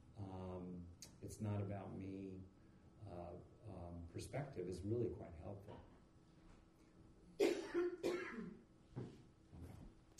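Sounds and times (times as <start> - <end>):
speech: 1.3 - 5.9
person coughing: 7.4 - 8.6.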